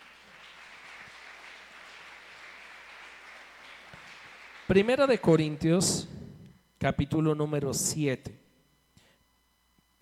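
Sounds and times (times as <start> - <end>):
subdued crowd applause: 0.0 - 6.0
speech: 4.7 - 6.2, 6.8 - 8.4.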